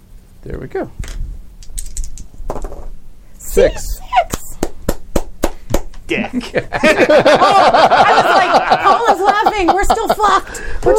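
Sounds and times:
speech: 0:00.4 - 0:01.2, 0:03.6 - 0:04.3, 0:06.1 - 0:10.9
dice clattering: 0:01.6 - 0:02.9
laughter: 0:06.1 - 0:10.9.

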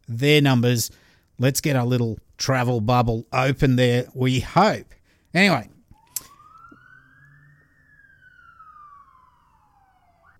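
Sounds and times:
speech: 0:00.1 - 0:05.8
police siren wailing: 0:05.9 - 0:10.3.

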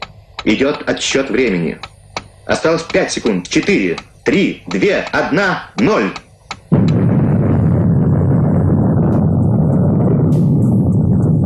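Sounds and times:
speech: 0:00.4 - 0:01.9, 0:02.5 - 0:06.9
underground nuclear explosion blast and roaring rumble: 0:06.7 - 0:11.4.

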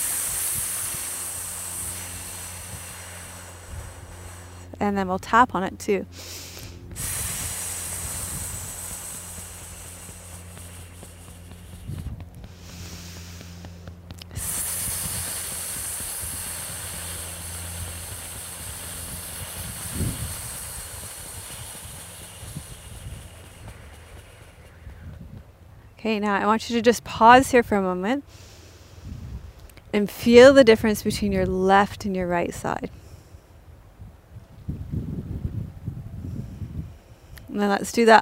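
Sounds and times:
person's snake-like hissing exhale during a breathing exercise: 0:00.0 - 0:04.8, 0:06.1 - 0:25.1, 0:28.2 - 0:29.5
faint low rumble: 0:00.0 - 0:38.0
speech: 0:04.8 - 0:06.5, 0:26.1 - 0:28.5, 0:30.0 - 0:33.0, 0:37.6 - 0:38.2.

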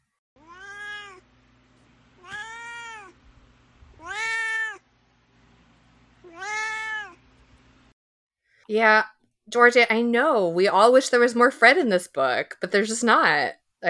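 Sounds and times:
cat meowing: 0:00.4 - 0:01.2, 0:02.2 - 0:03.2, 0:03.9 - 0:04.8, 0:06.2 - 0:07.2
speech: 0:08.7 - 0:13.8.

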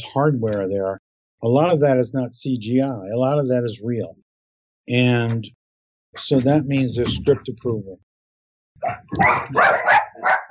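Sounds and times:
speech: 0:00.0 - 0:04.2, 0:04.8 - 0:08.1, 0:08.8 - 0:10.4
dogs barking sharply: 0:08.8 - 0:10.4.

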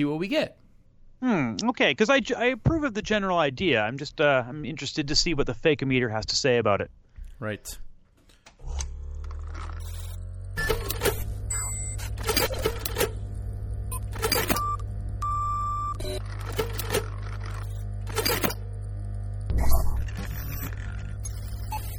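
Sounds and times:
speech: 0:00.0 - 0:00.6, 0:01.2 - 0:07.8
steady low electrical hum: 0:00.0 - 0:21.9
broken receipt printer running low on paper printing: 0:09.3 - 0:18.9, 0:20.0 - 0:21.9
electronic beeps: 0:09.5 - 0:13.2, 0:13.9 - 0:18.6, 0:19.5 - 0:21.9.

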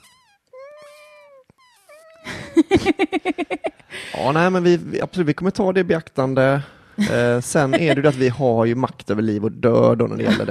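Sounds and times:
kitten meowing: 0:00.0 - 0:02.6
laughter: 0:02.3 - 0:04.4, 0:07.0 - 0:08.6, 0:10.1 - 0:10.5
speech: 0:04.2 - 0:10.5.

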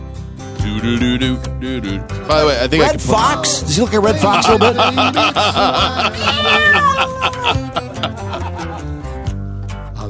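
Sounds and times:
speech: 0:00.6 - 0:08.4
laughter: 0:04.1 - 0:09.0
cat meowing in drawn-out wavering cries: 0:06.2 - 0:07.5.

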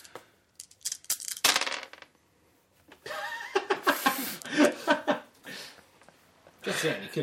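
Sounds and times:
dice rolling across a tabletop in a tabletop game: 0:00.0 - 0:02.2
people laughing and chuckling: 0:03.0 - 0:05.7
speech: 0:06.6 - 0:07.2.

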